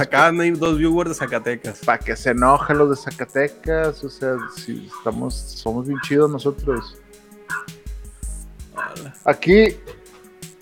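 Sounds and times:
speech: 0:00.0 - 0:07.0, 0:08.8 - 0:10.0
dog barking with sharp yips: 0:04.4 - 0:05.2, 0:05.9 - 0:06.9, 0:07.5 - 0:07.7, 0:08.8 - 0:09.0
dog whining: 0:07.5 - 0:07.7, 0:08.8 - 0:09.0.

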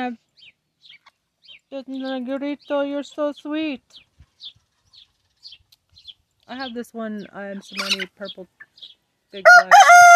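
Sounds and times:
speech: 0:00.0 - 0:01.0, 0:01.7 - 0:04.6, 0:06.5 - 0:10.1
rooster crowing: 0:09.5 - 0:10.1.

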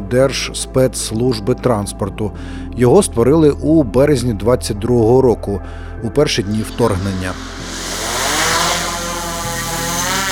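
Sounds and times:
speech: 0:00.1 - 0:07.7
quadcopter drone taking off with high-pitched rotor buzz: 0:06.4 - 0:10.3.

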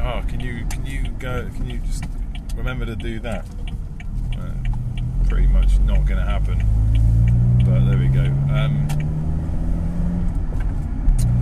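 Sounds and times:
faint clicks and rattles in a car: 0:00.0 - 0:08.1
loud car with a broken exhaust driving, heard from inside: 0:00.0 - 0:11.3
speech: 0:00.3 - 0:03.6, 0:05.3 - 0:06.9, 0:07.6 - 0:09.1.

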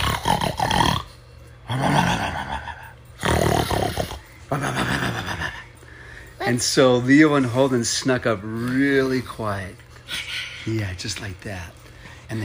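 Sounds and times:
voice imitating a sleeping troll's loud snotty snoring: 0:00.0 - 0:05.5
speech: 0:04.6 - 0:04.8, 0:06.5 - 0:09.8, 0:10.6 - 0:12.4.

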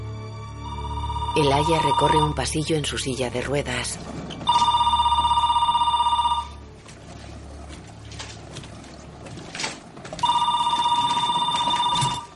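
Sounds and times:
telephone ringing in bright electronic trills: 0:00.6 - 0:02.7, 0:04.4 - 0:06.7, 0:10.2 - 0:12.3
speech: 0:01.4 - 0:04.7.

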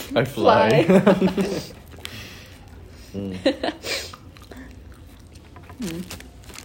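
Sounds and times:
speech: 0:00.1 - 0:01.8, 0:03.1 - 0:04.0, 0:05.8 - 0:06.2
person chewing food: 0:01.6 - 0:03.2, 0:03.8 - 0:06.6.

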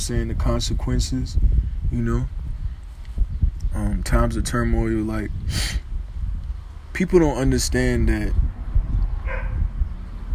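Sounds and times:
speech: 0:00.0 - 0:02.4, 0:03.2 - 0:05.8, 0:07.0 - 0:08.6
steady rumbling wind noise: 0:00.0 - 0:10.3
dog barking: 0:09.2 - 0:09.6.

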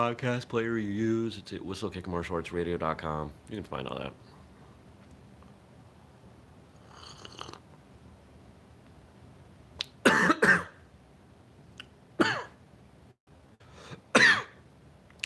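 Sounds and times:
speech: 0:00.0 - 0:04.3
man coughing in harsh bursts: 0:10.0 - 0:10.8, 0:12.2 - 0:12.6, 0:14.1 - 0:14.6
quiet breaths: 0:13.6 - 0:14.1.

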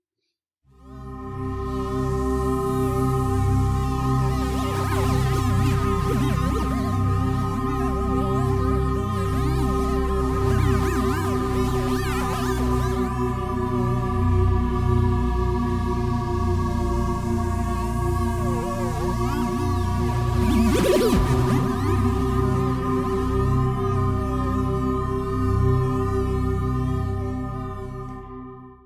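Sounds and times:
sonified magnetometer data from Mercury flyby as layered electronic drone: 0:01.0 - 0:28.1
eerie wavering whistles and swooping glides: 0:03.8 - 0:13.2, 0:17.0 - 0:23.1.

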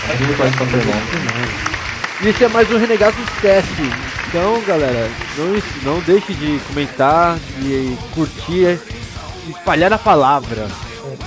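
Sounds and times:
applause: 0:00.0 - 0:08.4
people laughing and cheering: 0:00.0 - 0:11.2
speech: 0:00.1 - 0:10.8.

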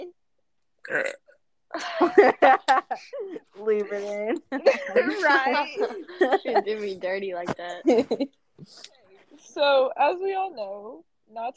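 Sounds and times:
person burping: 0:00.8 - 0:01.4
speech: 0:00.9 - 0:11.5
laughter: 0:01.8 - 0:03.4, 0:04.3 - 0:07.0, 0:07.8 - 0:08.8.

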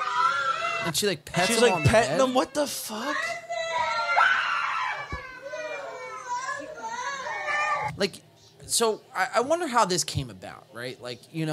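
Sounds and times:
group of children screaming together: 0:00.0 - 0:07.9
speech: 0:00.8 - 0:03.4, 0:08.0 - 0:11.5.

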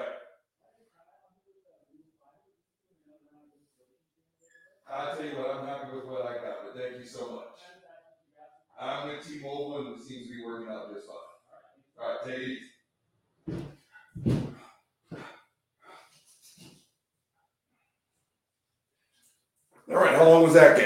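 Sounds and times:
voices talking: 0:04.9 - 0:08.0, 0:08.8 - 0:11.4, 0:19.9 - 0:20.8
front door pushed shut with a solid thud: 0:13.5 - 0:14.6
soft knocks and rustles: 0:13.5 - 0:14.6.

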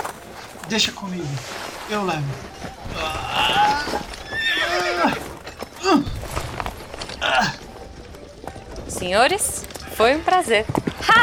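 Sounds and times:
speech: 0:00.7 - 0:04.1, 0:09.0 - 0:11.2
hooves clopping on hard ground: 0:02.0 - 0:11.2
horse being led whinnying: 0:02.9 - 0:06.2.

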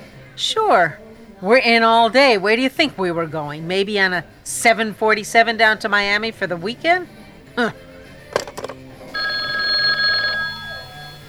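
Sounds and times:
speech: 0:00.4 - 0:07.8
clattering: 0:08.3 - 0:08.8
telephone bell ringing: 0:09.2 - 0:11.2.

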